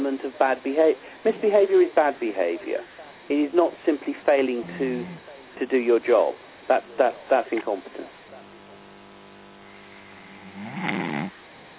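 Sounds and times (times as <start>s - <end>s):
speech: 0.3s - 8.2s
loud rasping snore: 4.6s - 5.2s, 10.3s - 11.3s.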